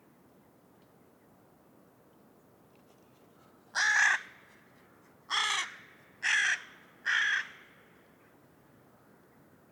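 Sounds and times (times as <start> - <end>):
Carrion crow calling harsh grating caws: 3.8 - 4.3, 5.3 - 7.7.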